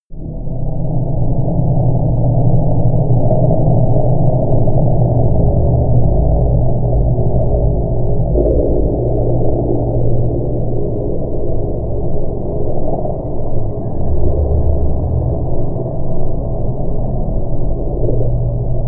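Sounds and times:
ambient drone: 0.1s - 18.8s.

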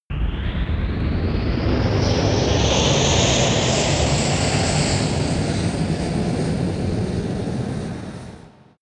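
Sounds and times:
rocket passing in space: 0.1s - 8.7s.

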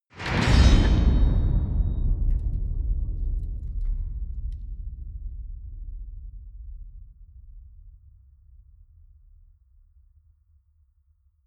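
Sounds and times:
enormous metal gate clanging: 0.2s - 4.0s.

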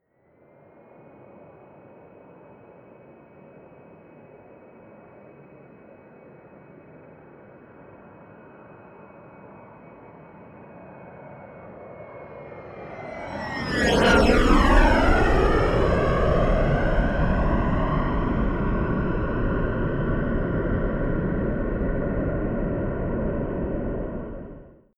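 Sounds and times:
Bombardier private jet flying by left to right close: 12.0s - 24.8s.

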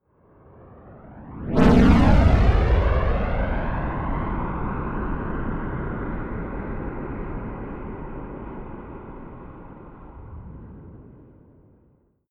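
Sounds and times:
large rocket flyby whoosh moving left to right: 0.8s - 4.9s.

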